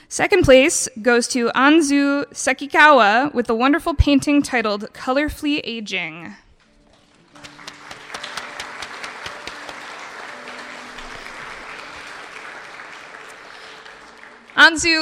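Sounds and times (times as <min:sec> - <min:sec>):
speech: 0:00.1 - 0:06.4, 0:14.6 - 0:14.9
audience applause: 0:07.0 - 0:14.9.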